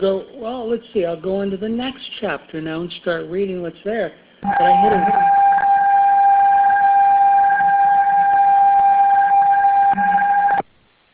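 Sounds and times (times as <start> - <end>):
speech: 0.0 - 5.5
electronic telephone tone of two blended pitches: 4.4 - 10.7.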